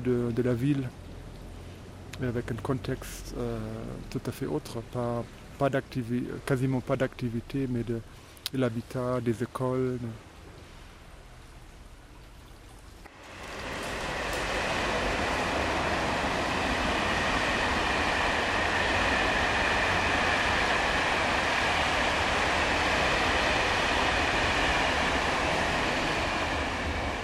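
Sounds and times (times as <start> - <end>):
speech: 0.0 - 1.1, 2.2 - 10.3
train rolling over a railway bridge: 13.0 - 27.2.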